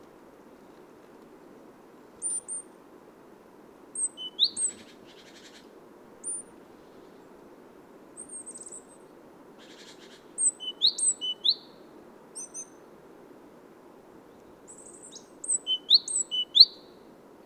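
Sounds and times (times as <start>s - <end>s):
great tit Parus major calls: 2.2s - 2.7s, 4.0s - 6.5s, 8.2s - 9.0s, 9.6s - 11.8s, 12.4s - 12.8s, 14.7s - 17.0s.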